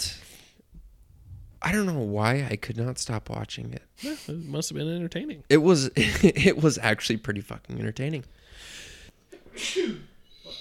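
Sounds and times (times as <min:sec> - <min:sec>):
speech: 0:01.6 - 0:08.4, 0:09.6 - 0:10.1
person sneezing: 0:09.4 - 0:10.6.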